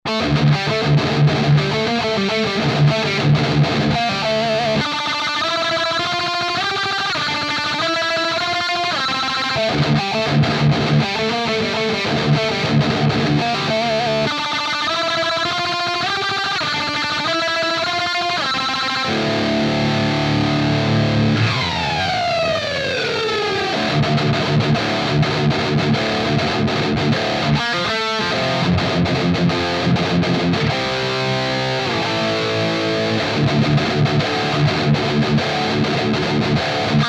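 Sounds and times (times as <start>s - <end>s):
electric guitar: 0.0s - 37.0s.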